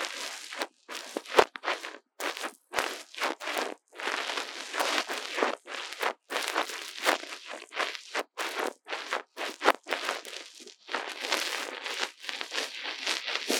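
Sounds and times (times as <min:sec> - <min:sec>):
crinkly crackling rustle on a mini microphone: 0:00.0 - 0:13.5.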